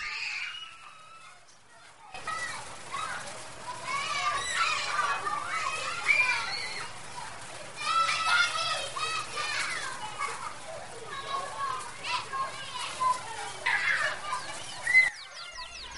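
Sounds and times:
children playing: 0:00.0 - 0:15.9
birds chirping and twittering: 0:13.7 - 0:15.9.

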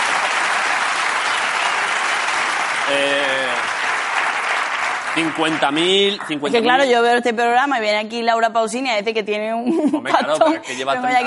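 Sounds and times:
large audience applause: 0:00.0 - 0:06.9
speech: 0:02.9 - 0:03.3, 0:05.2 - 0:11.2.

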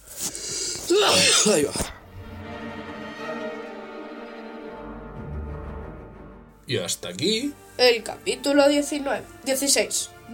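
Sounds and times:
person sneezing: 0:00.2 - 0:02.0
speech: 0:01.0 - 0:01.9, 0:06.7 - 0:10.3.

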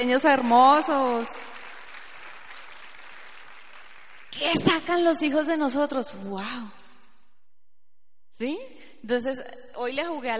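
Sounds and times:
speech: 0:00.0 - 0:01.4, 0:04.3 - 0:06.8, 0:08.4 - 0:10.3
audience applause: 0:00.5 - 0:04.7.

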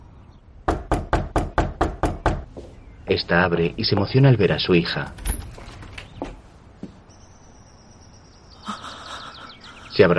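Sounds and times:
firm knocking on a door: 0:00.7 - 0:02.5
speech: 0:03.1 - 0:05.4, 0:10.0 - 0:10.1.

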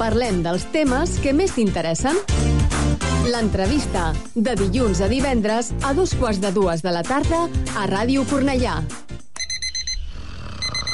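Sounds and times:
speech: 0:00.0 - 0:02.5, 0:03.2 - 0:09.1
alarm clock ringing with high electronic beeping: 0:09.4 - 0:10.9.

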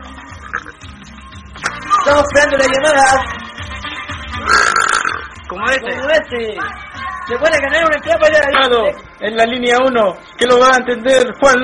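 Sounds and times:
loud burp in a loudest-burp contest: 0:00.4 - 0:00.9, 0:04.4 - 0:05.4
speech: 0:02.1 - 0:03.4, 0:05.5 - 0:11.6.

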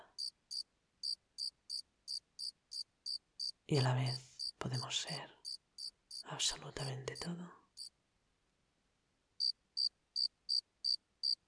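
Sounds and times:
cricket chirping: 0:00.1 - 0:04.6, 0:05.4 - 0:06.2, 0:09.4 - 0:11.4
speech: 0:03.7 - 0:05.4, 0:06.3 - 0:07.6.

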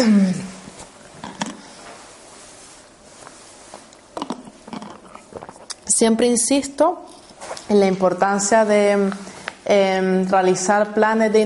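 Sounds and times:
speech: 0:00.0 - 0:00.4, 0:06.0 - 0:11.4
person sipping and swallowing water: 0:00.5 - 0:05.9.

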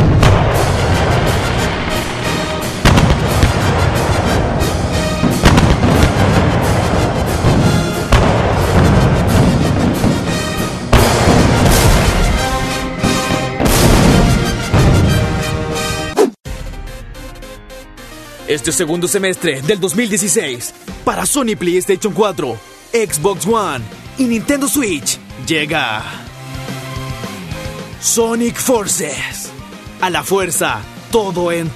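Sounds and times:
continuous rumbling roar: 0:00.0 - 0:12.6
heavy explosion blasts: 0:00.0 - 0:15.8
speech: 0:18.6 - 0:26.3, 0:28.0 - 0:29.4, 0:30.0 - 0:31.7.

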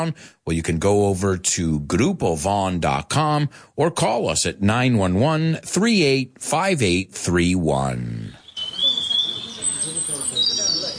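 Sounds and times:
speech: 0:00.0 - 0:08.4
birds chirping with thin high whistling calls: 0:08.3 - 0:10.9
low murmur of sound: 0:08.3 - 0:10.9.

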